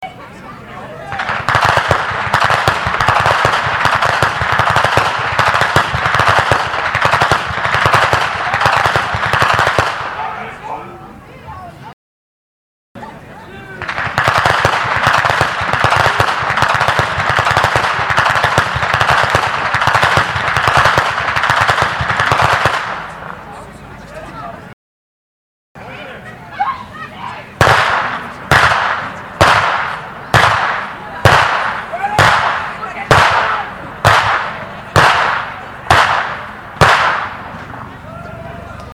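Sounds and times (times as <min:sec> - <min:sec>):
whip cracking in Ainring: 0:01.1 - 0:10.2, 0:13.8 - 0:23.2, 0:27.6 - 0:37.4.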